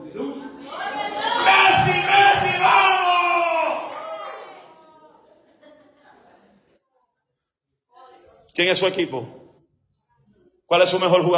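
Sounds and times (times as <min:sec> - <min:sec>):
large audience shouting praise to God together: 0:00.8 - 0:05.0
laughter: 0:04.5 - 0:06.8
speech: 0:08.6 - 0:09.4, 0:10.7 - 0:11.3.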